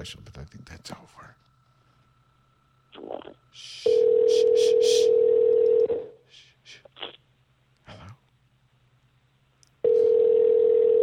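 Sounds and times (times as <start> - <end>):
speech: 0.0 - 1.4, 3.0 - 5.4
telephone dial tone while dialing a number: 3.9 - 6.0, 9.8 - 11.0.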